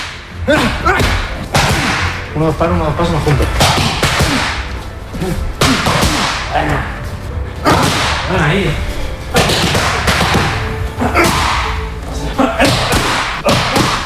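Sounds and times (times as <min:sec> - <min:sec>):
voices and grunting: 0:00.4 - 0:08.9, 0:10.8 - 0:14.0
speech: 0:00.5 - 0:01.1, 0:02.4 - 0:04.0, 0:05.2 - 0:05.9, 0:06.6 - 0:06.9, 0:07.6 - 0:08.9
boxing punches hitting training pads: 0:00.5 - 0:02.2, 0:03.4 - 0:04.7, 0:05.6 - 0:06.5, 0:07.7 - 0:08.3, 0:09.4 - 0:10.6, 0:12.6 - 0:14.0.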